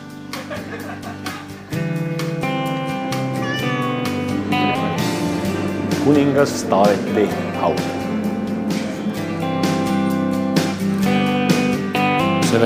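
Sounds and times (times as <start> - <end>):
laughter: 0.2 - 2.0
steady hum: 1.6 - 12.0
cat meowing: 3.3 - 4.9
speech: 6.1 - 8.0.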